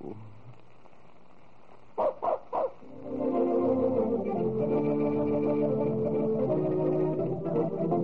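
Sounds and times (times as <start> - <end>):
dog giving a wavering whine-like yip: 2.0 - 2.7
dog barking sharply: 2.0 - 2.8
steady musical backdrop: 2.8 - 8.0.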